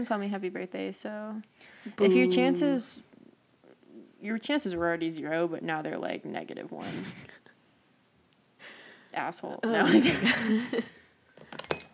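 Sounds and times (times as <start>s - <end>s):
speech: 0.0s - 3.1s, 4.2s - 7.4s, 9.1s - 11.0s
low murmur of voices: 1.9s - 3.0s
laughter: 9.8s - 11.0s
glasses clinking in a toast: 11.5s - 11.9s.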